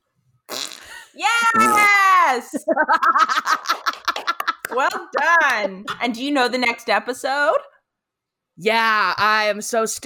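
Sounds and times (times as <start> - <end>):
loud fart noise made with the mouth: 0.5 - 0.9, 1.5 - 2.0
speech: 1.2 - 3.9, 4.8 - 7.8, 8.6 - 10.0.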